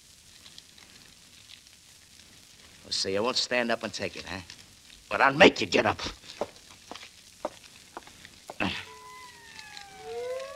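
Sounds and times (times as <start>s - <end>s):
speech: 2.8s - 6.5s
overlapping police sirens wailing: 8.6s - 10.5s.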